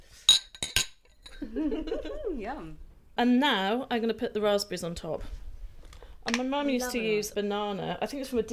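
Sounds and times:
glasses clinking in a toast: 0.3s - 1.4s
speech: 1.4s - 5.4s, 6.3s - 8.5s.

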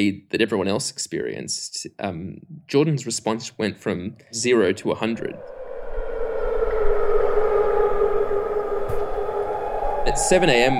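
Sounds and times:
speech: 0.0s - 5.6s, 10.1s - 10.7s
air raid siren wailing in Jordan: 5.0s - 10.7s
faint low rumble: 5.0s - 10.7s.

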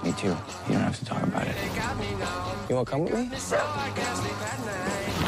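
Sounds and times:
speech: 0.2s - 5.2s
friendly red dog barking, yelping and whimpering: 3.5s - 3.7s.

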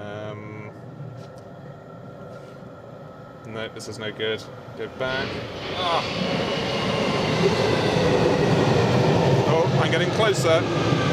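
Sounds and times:
metallic whine: 0.0s - 11.1s
speech: 3.6s - 6.7s, 7.4s - 8.6s, 9.5s - 11.1s
train rumbling through an enclosed underground tunnel: 4.5s - 11.1s.

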